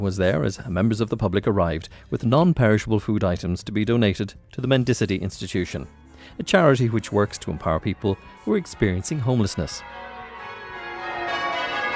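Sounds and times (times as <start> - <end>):
speech: 0.0 - 10.1
cathedral church bells ringing in a full peal: 6.4 - 11.9.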